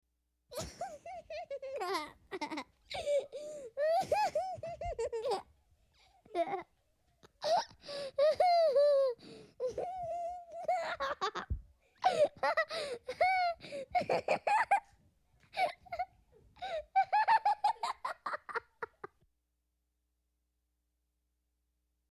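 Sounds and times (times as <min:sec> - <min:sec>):
little boy laughing: 0:00.5 - 0:05.5, 0:06.2 - 0:06.7, 0:07.4 - 0:14.9, 0:15.5 - 0:19.2.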